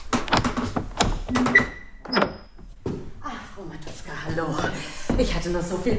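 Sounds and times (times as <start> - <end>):
door squeaky creak: 0.0 - 2.8
speech: 4.3 - 5.9.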